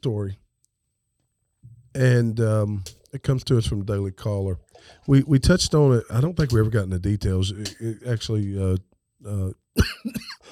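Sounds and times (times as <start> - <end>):
speech: 0.0 - 0.4, 2.0 - 10.5
harsh coughs: 9.8 - 10.5.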